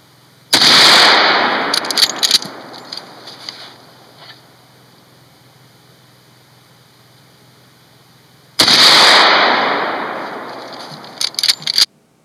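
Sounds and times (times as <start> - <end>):
lever-action rifle gunshots fired outdoors: 0.5 - 4.2, 8.6 - 11.9
quick clicks: 1.6 - 4.4, 10.2 - 11.9.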